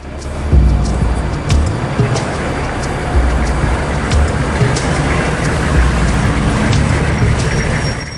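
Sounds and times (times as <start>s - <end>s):
armored truck engine rumbling while driving: 0.0s - 8.1s.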